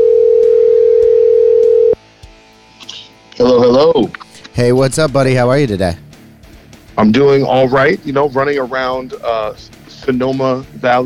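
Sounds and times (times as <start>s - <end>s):
electronic ringback tone from an outgoing phone call: 0.0s - 2.0s
speech: 3.4s - 6.0s, 7.0s - 11.0s.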